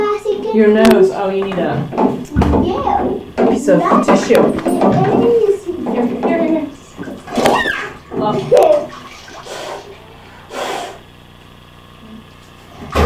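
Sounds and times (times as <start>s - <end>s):
speech: 0.5s - 5.5s
water sloshing and splashing in a bathtub: 1.4s - 10.5s.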